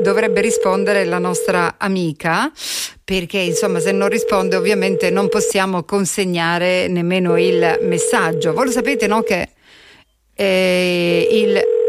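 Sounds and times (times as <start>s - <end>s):
telephone ringing tone on an unanswered call: 0.0s - 1.7s, 3.4s - 5.7s, 7.2s - 9.5s, 10.9s - 11.8s
speech: 0.0s - 9.6s, 10.4s - 11.8s.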